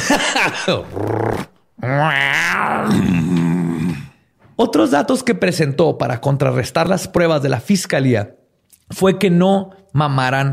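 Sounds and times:
speech: 0:00.1 - 0:03.5, 0:04.6 - 0:10.5
person imitating cat purring: 0:00.9 - 0:04.1.

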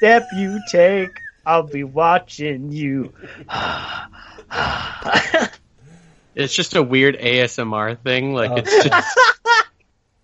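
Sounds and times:
laughter: 0:00.0 - 0:05.6, 0:06.4 - 0:09.7
speech: 0:00.0 - 0:05.6, 0:06.4 - 0:09.4
grunting pushes: 0:00.0 - 0:07.9
heavy breathy exhalations: 0:03.1 - 0:06.4.

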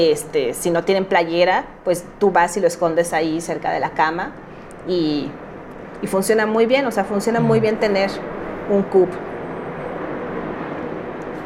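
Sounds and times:
speech: 0:00.0 - 0:05.4, 0:06.0 - 0:09.3
airplane passing overhead: 0:07.3 - 0:09.4.

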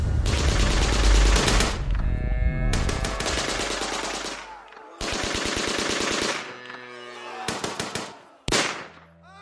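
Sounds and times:
machine gun fire in rapid bursts: 0:00.0 - 0:01.8, 0:02.7 - 0:06.4, 0:07.5 - 0:08.9.

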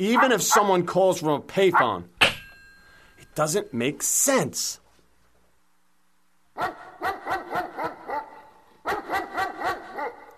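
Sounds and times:
speech: 0:00.0 - 0:02.2, 0:03.4 - 0:04.8, 0:06.6 - 0:06.8
dog barking sharply: 0:00.1 - 0:00.8, 0:06.6 - 0:10.3.

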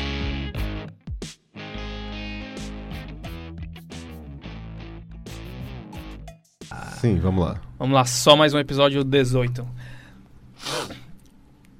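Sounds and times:
speech: 0:06.7 - 0:09.9
loud sharp sniff: 0:10.6 - 0:11.1.

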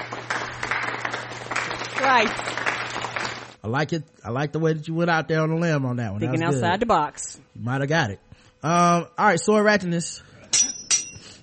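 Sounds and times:
slow quiet hand clapping: 0:00.0 - 0:03.6
low steady hum: 0:00.0 - 0:11.4
speech: 0:02.0 - 0:02.7, 0:03.6 - 0:10.7.

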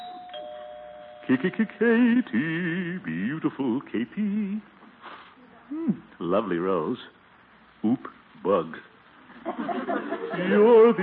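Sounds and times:
two-note doorbell ding-dong chime: 0:00.0 - 0:01.5
speech: 0:01.3 - 0:04.7, 0:05.7 - 0:07.2, 0:07.8 - 0:11.0
laughter: 0:09.3 - 0:11.0.

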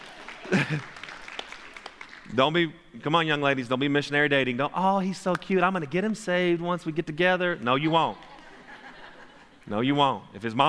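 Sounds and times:
scattered audience applause in a large room: 0:00.0 - 0:02.3
laughter: 0:00.2 - 0:01.1, 0:07.8 - 0:09.7
speech: 0:00.6 - 0:01.0, 0:02.3 - 0:08.3, 0:09.7 - 0:10.6.

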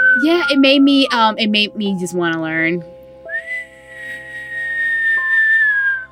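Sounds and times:
person whistling: 0:00.0 - 0:01.0, 0:03.3 - 0:06.0
speech: 0:00.2 - 0:02.9.

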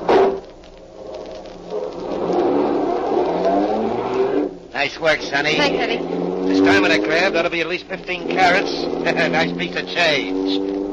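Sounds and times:
car engine revving as vehicle pulls away: 0:02.1 - 0:10.9
speech: 0:04.9 - 0:10.8.

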